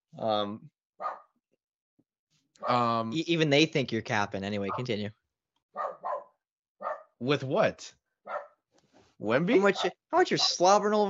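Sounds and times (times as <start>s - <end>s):
speech: 0.2s - 1.1s, 2.6s - 5.2s, 7.2s - 8.4s, 9.2s - 11.0s
dog barking: 1.0s - 1.3s, 2.6s - 2.8s, 4.7s - 5.0s, 5.8s - 7.2s, 8.3s - 8.6s.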